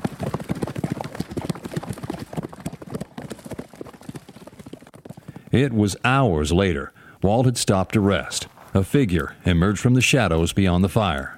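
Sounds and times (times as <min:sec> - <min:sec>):
horse hooves galloping on hard ground: 0:00.0 - 0:11.3
speech: 0:05.5 - 0:11.3.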